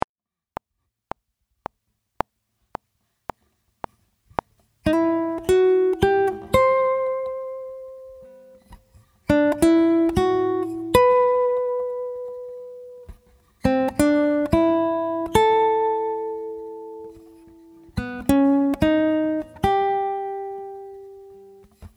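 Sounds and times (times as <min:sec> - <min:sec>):
fingerstyle guitar playing a theme: 0:03.3 - 0:21.9.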